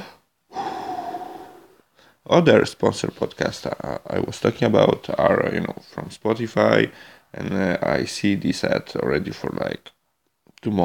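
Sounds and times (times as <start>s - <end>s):
deep breath drawn in: 0.0s - 2.2s
speech: 2.2s - 10.0s, 10.6s - 10.8s.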